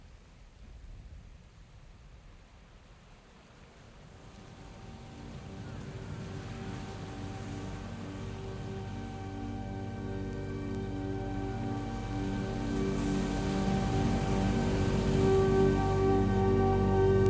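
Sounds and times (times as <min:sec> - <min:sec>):
distant sea waves: 0:00.0 - 0:17.2
faint motor-like hum: 0:04.0 - 0:17.2.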